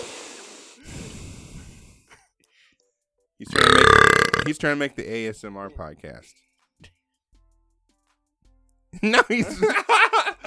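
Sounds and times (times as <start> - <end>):
person breathing heavily against the microphone: 0.0 - 2.8
speech: 3.4 - 7.0, 9.0 - 10.4
laughter: 9.0 - 10.4.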